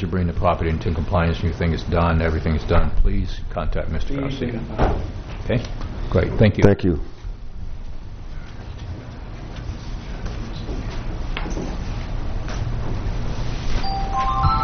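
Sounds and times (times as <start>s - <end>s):
speech: 0.0s - 7.2s
steady room hum: 0.0s - 14.6s
mobile phone ringing with short electronic tones: 13.8s - 14.6s.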